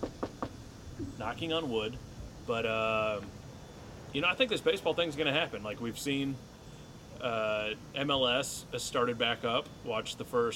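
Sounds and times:
knocking on wood: 0.0s - 1.2s
speech: 1.1s - 3.4s, 4.1s - 6.5s, 7.2s - 10.5s.

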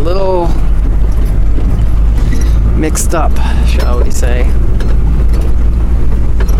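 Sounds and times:
car cabin engine and road noise on raw rugged dusty road behind bus: 0.0s - 6.5s
faint rattles and bumps in car cabin on rough road: 0.0s - 6.5s
speech: 3.0s - 5.0s.

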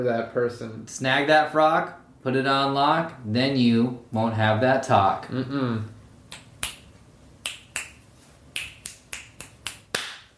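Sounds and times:
speech: 0.0s - 6.0s
finger snaps: 6.3s - 10.3s
hand claps: 6.3s - 10.3s.

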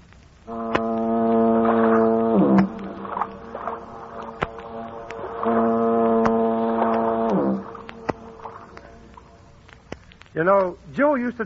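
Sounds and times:
deep foghorn blasts across San Francisco Bay by the Golden Gate: 0.5s - 9.3s
speech: 10.4s - 11.4s.

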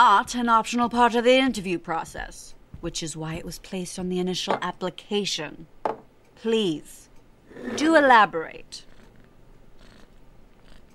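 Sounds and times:
speech: 0.0s - 5.7s, 6.4s - 8.9s
cat purring: 8.7s - 10.9s.

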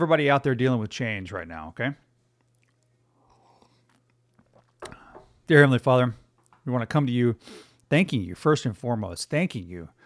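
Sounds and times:
speech: 0.0s - 2.0s, 4.8s - 10.0s
faint steady hum: 0.0s - 10.0s
person sipping and slurping hot coffee: 2.4s - 5.3s.

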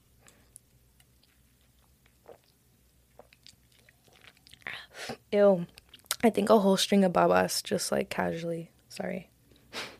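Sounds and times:
person sipping an energy drink: 0.2s - 5.2s
speech: 5.3s - 9.3s.

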